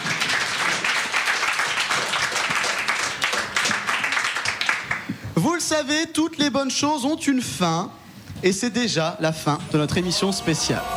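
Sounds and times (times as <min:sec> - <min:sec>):
crowd applauding: 0:00.0 - 0:05.2
speech: 0:05.4 - 0:10.9.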